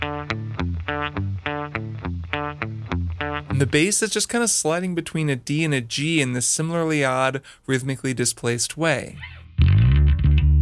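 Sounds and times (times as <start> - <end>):
electric guitar with effects and distortion playing a descending figure on open strings: 0.0 - 3.8, 9.2 - 10.6
speech: 3.6 - 9.4.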